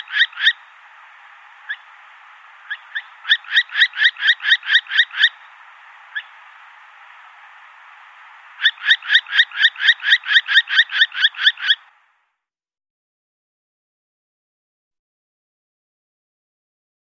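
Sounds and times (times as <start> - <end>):
Northern hawk-owl uttering screechy notes and harsh yelps: 0.0 - 0.7, 1.7 - 1.9, 2.6 - 5.5, 6.1 - 6.4, 8.6 - 11.9.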